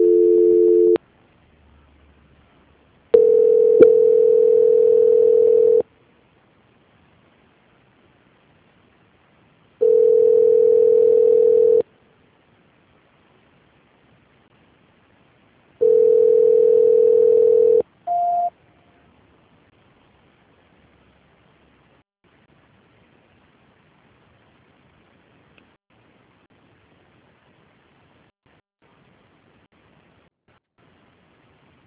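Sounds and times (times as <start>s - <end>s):
telephone tone while a call is being transferred: 0.0s - 1.0s, 3.2s - 5.8s, 9.8s - 11.8s, 15.8s - 18.5s.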